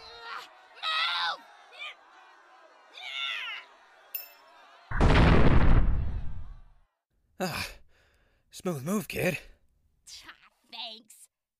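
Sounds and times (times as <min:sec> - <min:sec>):
grenade explosion: 0:04.9 - 0:06.6
speech: 0:07.4 - 0:07.8, 0:08.6 - 0:09.5.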